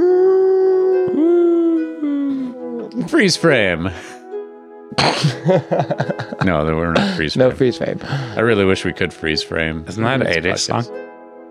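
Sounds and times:
voice imitating a dog howling: 0:00.0 - 0:03.0
speech: 0:03.1 - 0:04.1, 0:05.0 - 0:11.0
laughter: 0:04.9 - 0:08.5.

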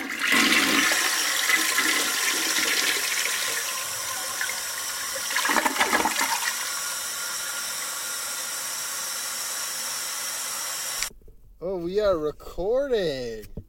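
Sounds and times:
toilet flushing with rushing water: 0:00.0 - 0:08.2
speech: 0:12.0 - 0:13.6.

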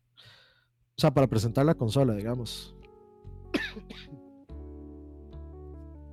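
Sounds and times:
speech: 0:01.0 - 0:02.8
music: 0:01.0 - 0:06.1
person coughing: 0:03.5 - 0:04.2
throat clearing: 0:03.6 - 0:04.2.

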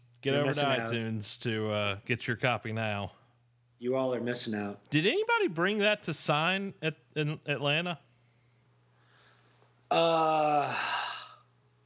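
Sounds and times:
speech: 0:00.2 - 0:03.2, 0:03.8 - 0:08.1, 0:09.9 - 0:11.0
person yawning: 0:09.9 - 0:11.5.

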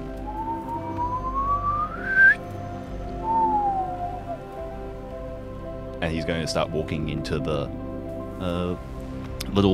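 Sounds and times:
man giving a light two-part whistle as a signal: 0:00.2 - 0:02.5, 0:03.2 - 0:04.5
speech: 0:06.0 - 0:08.9, 0:09.5 - 0:09.7.

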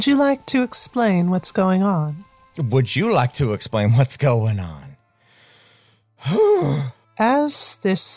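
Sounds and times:
speech: 0:00.0 - 0:04.9, 0:06.2 - 0:08.1
loud heavy voiced gasp: 0:05.3 - 0:07.0.

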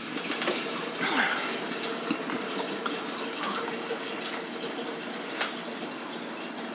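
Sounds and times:
liquid poured into a container until full: 0:00.0 - 0:06.7.

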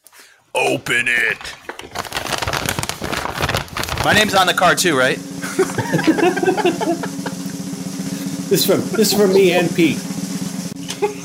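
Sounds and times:
speech: 0:00.6 - 0:02.0, 0:04.0 - 0:07.2, 0:08.5 - 0:10.1
brown paper bag crinkling as it is torn open and unwrapped: 0:00.8 - 0:04.9
laughter: 0:05.4 - 0:07.6, 0:10.9 - 0:11.2.

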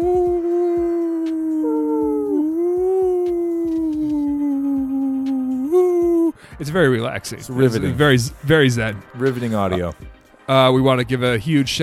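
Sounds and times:
people howling like wolves: 0:00.0 - 0:06.3
speech: 0:06.6 - 0:11.8.

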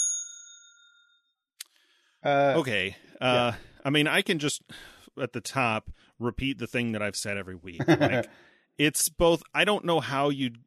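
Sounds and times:
bell ding: 0:00.0 - 0:01.2
speech: 0:02.2 - 0:10.6
laughter: 0:03.2 - 0:03.6, 0:07.8 - 0:08.3.

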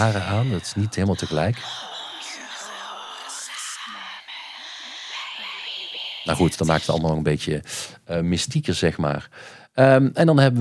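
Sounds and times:
speech: 0:00.0 - 0:01.9, 0:06.3 - 0:10.5
breathy whispered sung vocal line: 0:00.0 - 0:07.3.

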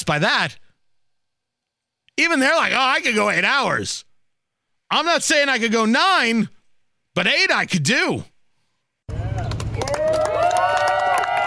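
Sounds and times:
speech: 0:00.0 - 0:00.6, 0:02.2 - 0:04.1, 0:04.9 - 0:06.6, 0:07.2 - 0:08.3
crowd cheering: 0:09.1 - 0:11.4.

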